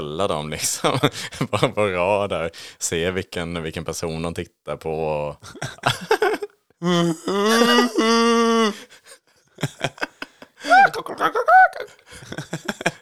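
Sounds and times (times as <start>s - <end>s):
speech: 0.1s - 9.0s, 9.6s - 10.1s, 10.8s - 12.9s
laughter: 5.4s - 8.7s, 9.6s - 12.9s
person imitating a roe deer call: 6.8s - 8.8s.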